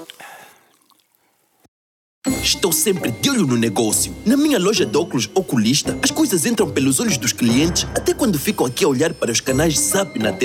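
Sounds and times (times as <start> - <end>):
lemon-lime soda poured and fizzing: 0.0 - 1.6
speech: 2.2 - 10.4.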